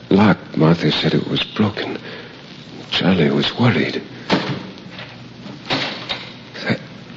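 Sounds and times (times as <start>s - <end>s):
steady hiss of noise: 0.0s - 7.1s
speech: 0.3s - 2.2s, 2.9s - 4.5s
outer door of a house closing: 4.3s - 6.4s.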